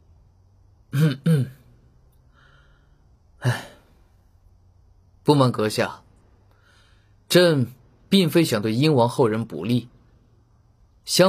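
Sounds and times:
speech: 0.9s - 1.5s, 5.3s - 6.0s, 7.3s - 10.0s, 11.1s - 11.2s
man lightly clearing throat: 0.9s - 1.7s.

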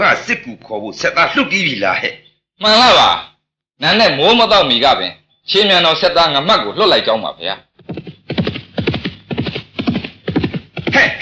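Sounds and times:
speech: 0.0s - 8.0s, 11.0s - 11.2s
courier's horse hooves galloping: 7.8s - 11.2s.

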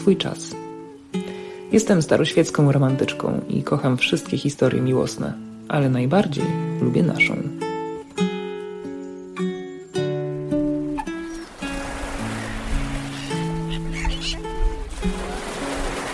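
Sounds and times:
speech: 0.0s - 0.6s, 1.7s - 7.6s
seagulls calling by the sea: 8.8s - 16.1s
steady wash of surf: 10.6s - 16.1s.

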